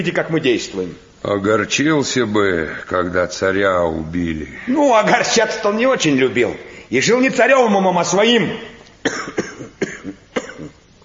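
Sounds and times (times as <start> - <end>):
speech: 0.0 - 9.4
ailing man with aching chest coughing: 9.0 - 10.9.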